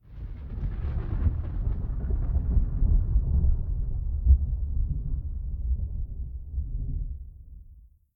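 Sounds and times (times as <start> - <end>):
victory thunder rumble: 0.1 - 7.6.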